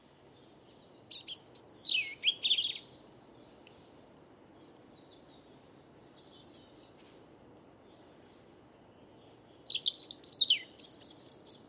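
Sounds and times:
European robin singing autumn song on a calm windless morning: 0:00.2 - 0:07.0, 0:07.7 - 0:11.6.

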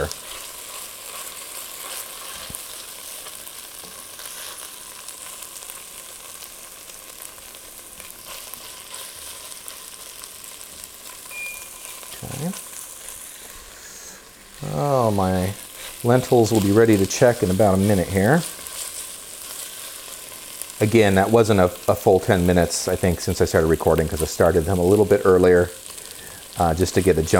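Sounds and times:
stirring scrapes in a pan: 0:00.0 - 0:06.5, 0:07.2 - 0:20.8
chopped ginger and crushed garlic sizzling in a pan: 0:00.0 - 0:27.3
speech: 0:12.4 - 0:12.7, 0:14.8 - 0:18.5, 0:20.8 - 0:25.8, 0:26.6 - 0:27.3.

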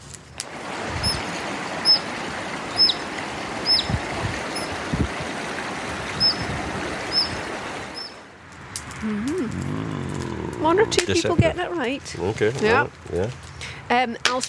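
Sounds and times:
flowing water rushing: 0:00.3 - 0:13.0
dipper calls: 0:00.4 - 0:08.3
speech: 0:10.8 - 0:14.4.

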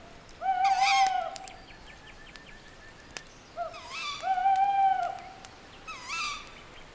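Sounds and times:
owl hooting at night: 0:00.4 - 0:01.5, 0:03.6 - 0:06.5.

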